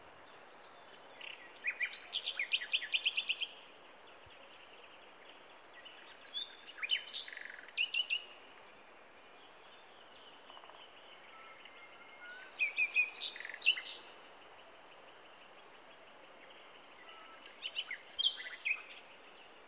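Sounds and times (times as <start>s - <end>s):
Common nightingale singing: 0.8s - 3.7s, 5.3s - 8.4s, 9.8s - 14.4s, 15.2s - 19.6s.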